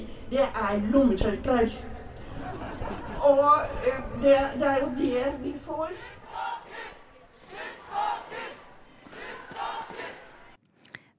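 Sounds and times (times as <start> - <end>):
speech: 0.3 - 1.9, 2.9 - 6.2
laughter: 2.2 - 3.4
crowd roaring collective shouts: 5.8 - 10.6.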